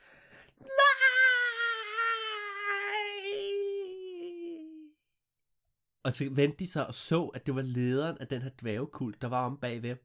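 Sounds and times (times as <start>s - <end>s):
long wailing scream from one voice: 0.6s - 4.9s
speech: 6.0s - 10.0s.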